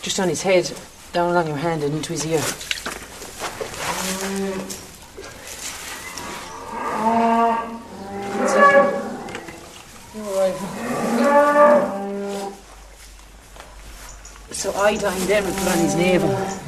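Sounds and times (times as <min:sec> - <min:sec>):
speech: 0:00.0 - 0:02.7, 0:04.2 - 0:04.8, 0:14.8 - 0:16.6
faint barn noise: 0:00.0 - 0:16.6
cow mooing near newborn female Limousin calf in a pen: 0:06.5 - 0:09.7, 0:10.5 - 0:12.5, 0:15.3 - 0:16.6.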